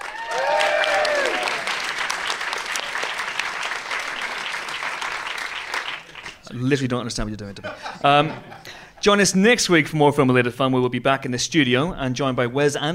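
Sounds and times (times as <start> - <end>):
whoops and cheers: 0.0 - 1.8
large audience clapping: 0.0 - 6.5
speech: 6.6 - 12.9
laughter: 7.6 - 9.0.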